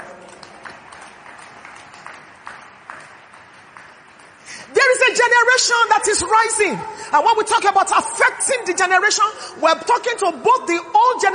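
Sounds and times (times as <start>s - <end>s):
sharper claps at a roughly regular beat: 0.0s - 4.4s
crowd applauding: 0.0s - 4.5s
speech: 5.2s - 11.3s.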